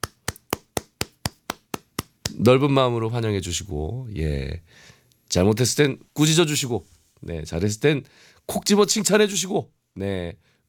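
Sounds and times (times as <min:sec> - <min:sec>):
hand claps: 0:00.0 - 0:02.5
speech: 0:02.4 - 0:10.6.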